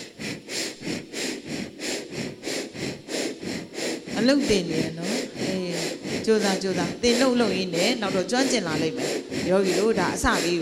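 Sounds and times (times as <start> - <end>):
meditation teacher breathing in short, airy, sniff-like breaths: 0.0 - 6.2, 9.0 - 9.8
speech: 4.2 - 5.1, 6.3 - 10.6.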